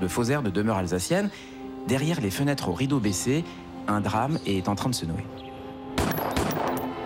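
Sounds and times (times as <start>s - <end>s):
speech: 0.0s - 5.4s
gunshots: 6.0s - 6.9s.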